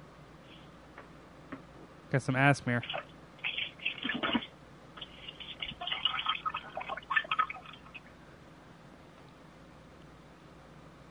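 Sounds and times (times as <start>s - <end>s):
speech: 2.1s - 3.1s
person defecating: 2.8s - 8.1s
toilet gurgling: 2.8s - 8.1s.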